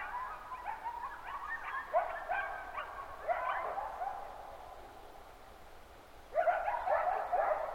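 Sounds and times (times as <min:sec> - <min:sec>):
group of coyotes yipping and yelping in the early morning: 0:00.0 - 0:04.5, 0:06.3 - 0:07.7.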